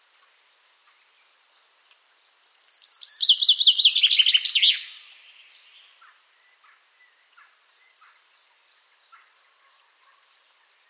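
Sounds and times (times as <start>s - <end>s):
common chaffinch singing: 2.4s - 9.3s.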